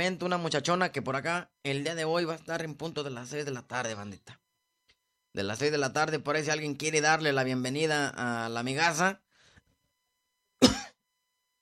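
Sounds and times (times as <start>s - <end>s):
speech: 0.0s - 4.4s, 5.3s - 9.2s
single short harsh cough: 10.6s - 11.0s.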